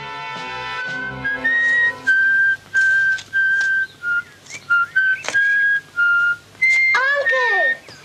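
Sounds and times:
music: 0.0s - 2.4s
man whistling a tune: 0.8s - 7.8s.

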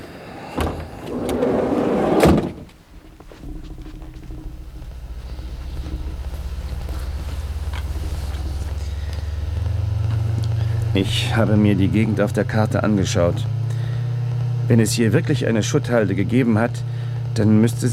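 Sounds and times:
car engine rumble while starting and driving off: 0.0s - 17.9s
car door closing: 0.4s - 11.1s
speech: 11.0s - 13.6s, 14.7s - 17.9s.

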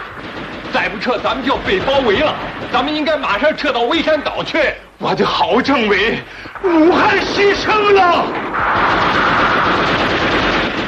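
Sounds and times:
heavy machine gun fire in a battle against advancing cavalry: 0.0s - 3.6s, 6.9s - 10.8s
speech: 0.8s - 9.2s.

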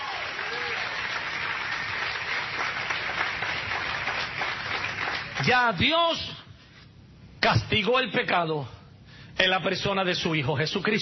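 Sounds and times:
church congregation applauding during a sermon: 0.0s - 5.8s
speech: 5.5s - 6.3s, 7.4s - 8.8s, 9.4s - 11.0s.

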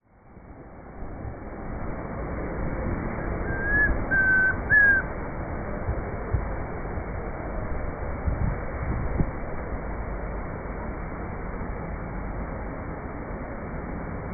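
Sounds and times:
steady low rumble: 0.0s - 14.3s
chestnut-crowned antpitta Grallaria ruficapilla whistled call: 3.2s - 5.1s.

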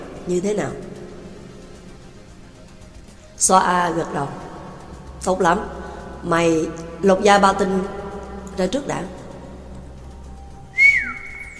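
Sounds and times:
speech: 0.2s - 0.9s, 3.4s - 4.5s, 5.2s - 8.0s, 8.6s - 9.2s
person whistling a high note through pursed lips: 10.7s - 11.5s.

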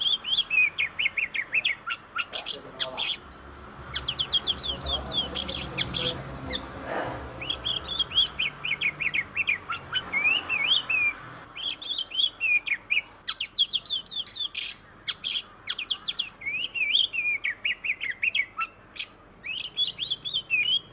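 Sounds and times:
Oriental magpie-robin song in masteran style: 0.0s - 20.9s.

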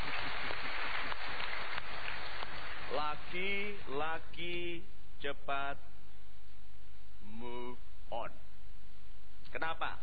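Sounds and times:
audience applause at a motivational talk show: 0.0s - 3.8s
speech: 3.0s - 5.9s, 7.4s - 8.4s, 9.5s - 10.0s.

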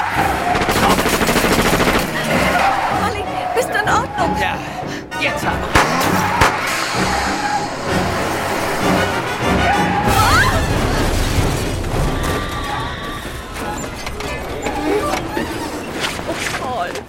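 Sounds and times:
car engine rumbling: 0.0s - 17.0s
car crash crunching and smashing impacts: 5.7s - 7.6s, 10.0s - 14.6s.

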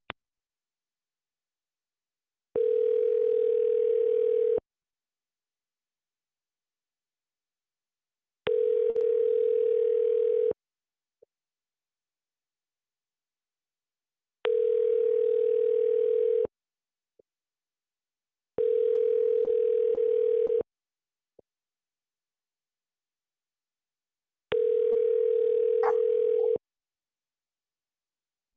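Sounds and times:
telephone ringing tone on the line while a call is transferred: 2.5s - 4.6s, 8.5s - 10.5s, 14.5s - 16.5s, 18.6s - 20.6s, 24.5s - 26.6s.

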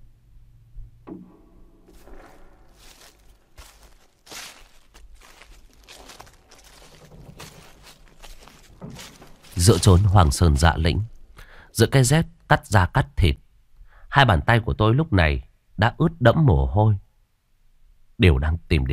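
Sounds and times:
slow footsteps crunching and scuffing in a cold moss-covered wilderness: 1.9s - 11.4s
speech: 9.6s - 11.2s, 11.8s - 13.4s, 14.1s - 17.0s, 18.2s - 18.9s.

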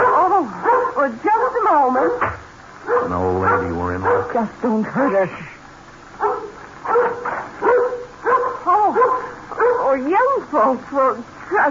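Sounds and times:
dog giving short whiny barks and yips inside a house: 0.0s - 4.4s, 6.2s - 10.0s
speech: 1.0s - 2.5s, 3.1s - 5.6s, 10.0s - 11.6s.

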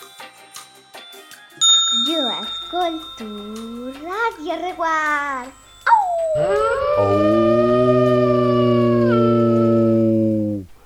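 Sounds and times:
speech: 2.1s - 5.6s, 6.4s - 7.6s
wolves howling on a mountain: 5.9s - 10.7s.

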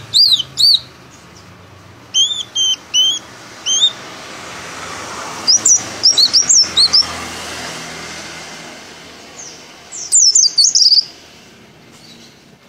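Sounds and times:
white-eye of the dakun type singing with open beak: 0.0s - 0.9s, 2.1s - 4.0s, 5.4s - 7.1s, 9.4s - 11.1s.

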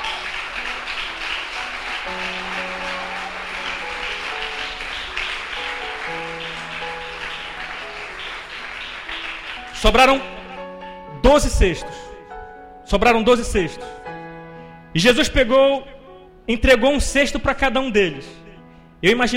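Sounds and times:
church congregation applauding: 0.0s - 11.1s
sustained musical tones and held chords: 0.0s - 12.8s
speech: 9.8s - 10.4s, 11.2s - 12.0s, 12.9s - 14.0s, 14.9s - 18.4s, 19.0s - 19.3s.

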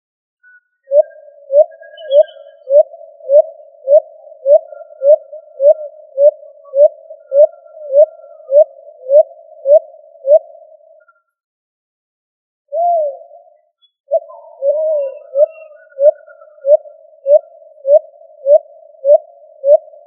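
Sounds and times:
pigeon calling with low short rising hoots: 0.8s - 11.1s, 12.7s - 20.0s.

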